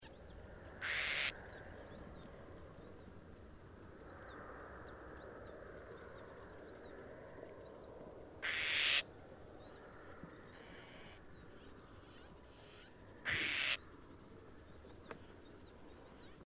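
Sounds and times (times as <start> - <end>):
Southern Grey Shrike calling: 0.8 - 1.4, 8.4 - 9.0, 11.9 - 13.8.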